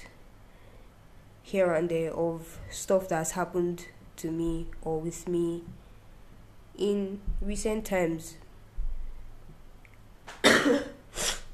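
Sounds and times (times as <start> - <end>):
speech: 1.5 - 5.8, 6.8 - 8.4, 10.6 - 10.9
person coughing: 10.4 - 11.5.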